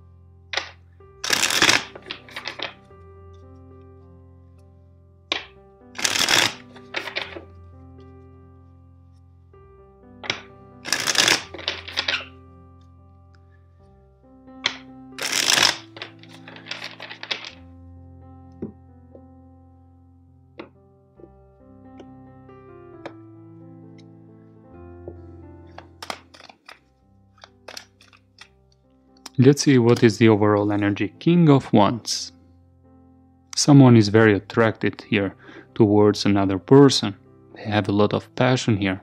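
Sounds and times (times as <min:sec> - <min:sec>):
soft music: 0:00.0 - 0:39.0
deck of cards being riffle shuffled: 0:00.6 - 0:02.9, 0:05.4 - 0:07.6, 0:10.2 - 0:12.4, 0:14.7 - 0:17.6, 0:25.8 - 0:28.4
speech: 0:29.4 - 0:32.4, 0:33.6 - 0:39.0.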